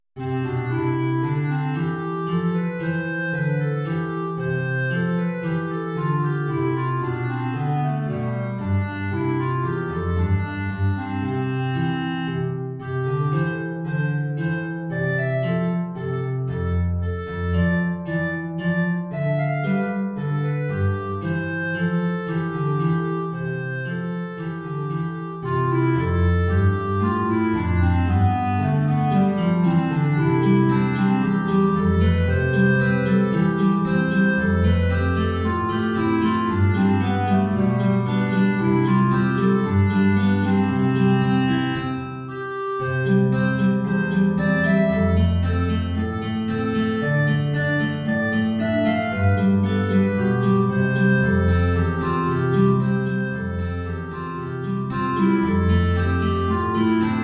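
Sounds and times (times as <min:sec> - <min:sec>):
low guitar playing a B-flat clarinet air: 0:00.2 - 0:57.2.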